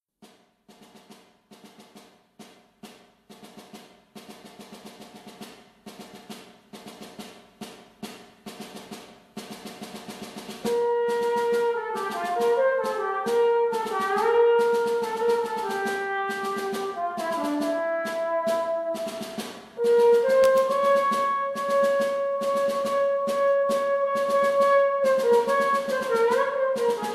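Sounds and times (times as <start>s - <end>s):
solo trombone playing: 10.6s - 27.1s.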